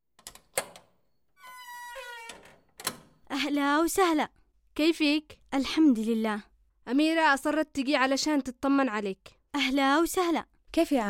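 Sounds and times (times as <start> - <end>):
door latch clicks and thunk: 0.2 - 3.3
speech: 3.4 - 11.0.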